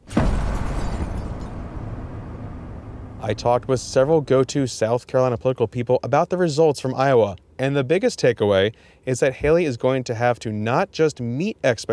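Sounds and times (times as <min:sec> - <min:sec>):
cannon fire sound effect: 0:00.0 - 0:04.8
speech: 0:03.2 - 0:11.9.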